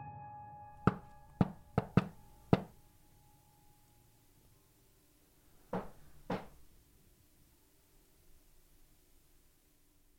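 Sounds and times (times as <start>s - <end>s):
rhythm knocked on a door: 0.8s - 2.8s, 5.7s - 6.6s.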